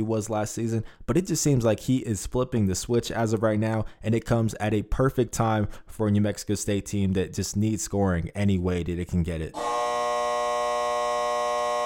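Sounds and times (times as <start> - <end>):
speech: 0.0 - 10.1
loud electronic buzzer marking end of segment: 9.6 - 11.8.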